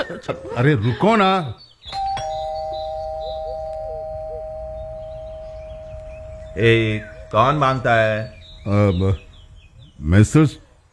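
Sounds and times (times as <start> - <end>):
speech: 0.1 - 2.1, 6.6 - 9.2, 10.0 - 10.6
electric doorbell chime: 2.0 - 6.8
low rumble: 2.9 - 10.0.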